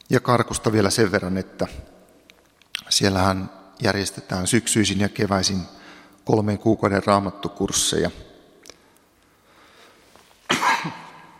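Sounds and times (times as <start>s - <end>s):
speech: 0.1s - 2.0s, 2.9s - 8.3s
sharp loud cough: 10.5s - 11.3s.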